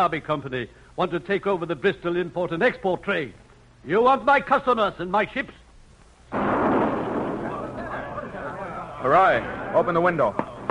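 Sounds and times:
speech: 0.0 - 5.6, 9.0 - 10.5
loud explosive boom from a pirate ship attacking a vessel: 6.3 - 8.1.

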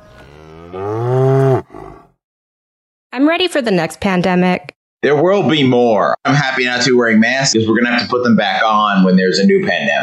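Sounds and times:
cow mooing: 0.0 - 2.1
speech: 0.7 - 1.0, 3.2 - 10.0.

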